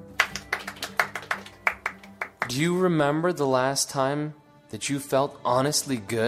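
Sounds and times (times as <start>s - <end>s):
small audience clapping hands: 0.0s - 2.6s
speech: 2.5s - 6.2s.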